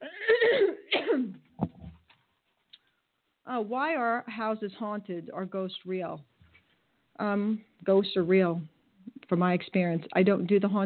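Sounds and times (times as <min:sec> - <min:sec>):
raspy cough: 0:00.0 - 0:01.4
speech: 0:03.5 - 0:06.3, 0:07.2 - 0:08.7, 0:09.3 - 0:10.8.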